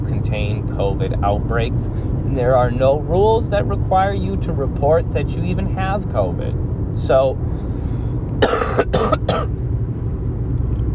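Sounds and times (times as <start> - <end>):
low steady rumble: 0.0 - 10.9
speech: 0.8 - 7.5, 8.4 - 9.6
hoarse coughing from a person who has been ill: 8.4 - 9.5.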